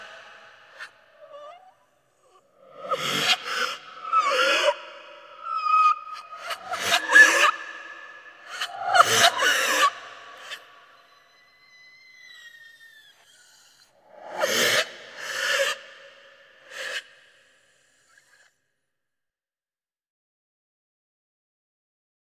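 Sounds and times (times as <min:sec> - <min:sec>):
female breathing effect with reverse echo: 0:02.5 - 0:18.2.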